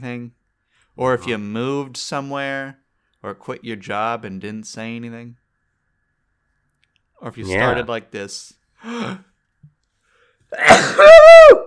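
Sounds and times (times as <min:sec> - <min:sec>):
speech: 0:00.0 - 0:00.4, 0:01.0 - 0:05.4, 0:07.2 - 0:09.3, 0:10.5 - 0:11.6
person sneezing: 0:10.5 - 0:11.3.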